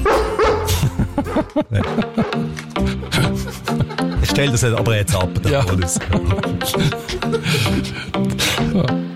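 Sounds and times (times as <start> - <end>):
dog barking with whiny yipping tones: 0.0 - 2.5
laughter: 0.7 - 9.0
speech: 1.6 - 2.4, 4.4 - 9.0.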